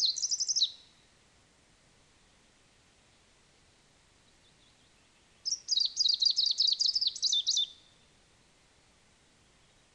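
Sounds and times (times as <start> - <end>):
Greenish Warbler viridanus singing: 0.0 - 1.0, 3.7 - 8.1.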